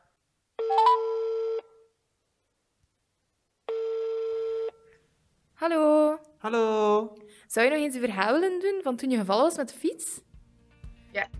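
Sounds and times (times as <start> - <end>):
telephone dialing beeps: 0.6 - 1.4
telephone ringing tone: 0.6 - 1.8, 3.7 - 4.8
speech: 5.6 - 10.3, 11.1 - 11.3.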